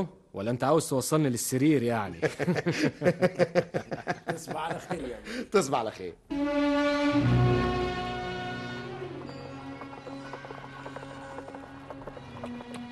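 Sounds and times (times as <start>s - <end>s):
speech: 0.0s - 7.7s
laughter: 2.1s - 5.3s
tonal music passage: 6.3s - 9.8s
horse hooves clip-clopping while pulling a carriage: 8.6s - 12.9s.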